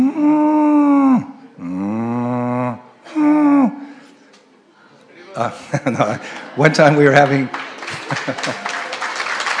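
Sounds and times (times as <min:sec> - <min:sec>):
person imitating a cow crying with mooing wails: 0:00.0 - 0:03.8
laughter: 0:05.2 - 0:09.5
speech: 0:05.4 - 0:08.7.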